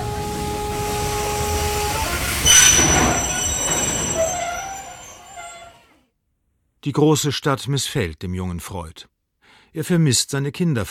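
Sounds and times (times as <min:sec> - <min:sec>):
train rolling along the rails with a steady rumble: 0:00.0 - 0:05.8
train wheels letting out high metallic squeals: 0:01.5 - 0:06.0
speech: 0:06.8 - 0:09.1, 0:09.7 - 0:10.8.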